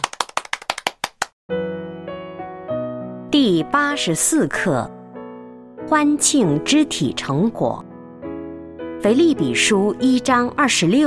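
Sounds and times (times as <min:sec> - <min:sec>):
hand claps: 0:00.0 - 0:01.4
speech: 0:03.4 - 0:05.0, 0:05.9 - 0:07.8, 0:09.0 - 0:11.0.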